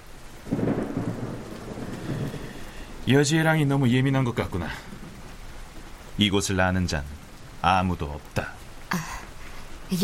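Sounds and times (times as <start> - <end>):
heavy rain: 0.0 - 10.0
deep rumble of thunder: 0.2 - 7.6
speech: 3.1 - 4.9, 6.2 - 9.0.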